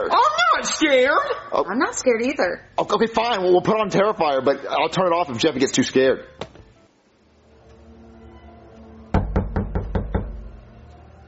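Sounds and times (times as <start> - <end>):
speech: 0.0 - 6.5
firm knocking on a door: 9.1 - 10.5.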